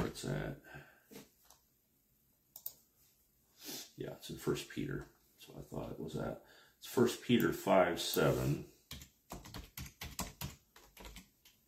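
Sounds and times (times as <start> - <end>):
speech: 0.2 - 1.2, 4.0 - 8.7
typing on a computer keyboard: 2.6 - 2.8, 8.9 - 11.6.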